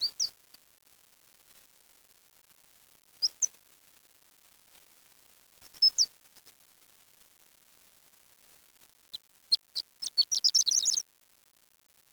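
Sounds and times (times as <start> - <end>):
bird chirping: 0.0 - 0.3, 3.2 - 3.5, 5.8 - 6.1, 9.5 - 11.0.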